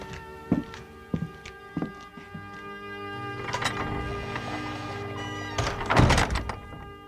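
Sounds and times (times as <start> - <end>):
slow footsteps: 0.0 - 2.9
door creaking open with a long groan: 3.4 - 7.0
door swinging shut with a solid thump: 5.6 - 6.8.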